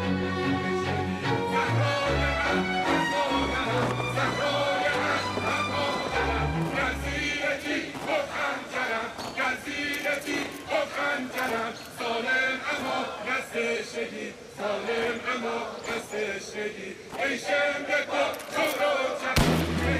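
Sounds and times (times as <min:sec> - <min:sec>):
murmur of many voices talking and shouting: 0:00.0 - 0:19.9
gunshot: 0:19.4 - 0:19.9.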